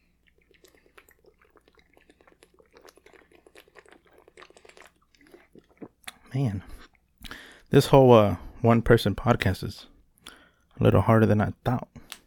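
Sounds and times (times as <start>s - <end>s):
person sipping water with slurps and swallowing: 0.0s - 7.8s
speech: 6.3s - 6.9s, 7.7s - 9.9s, 10.8s - 11.9s.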